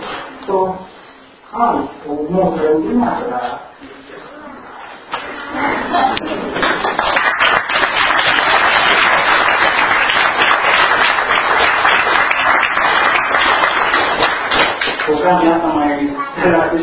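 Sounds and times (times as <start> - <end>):
speech: 0.5 - 4.2, 5.5 - 7.3, 15.1 - 16.8
large crowd applauding: 6.6 - 15.1.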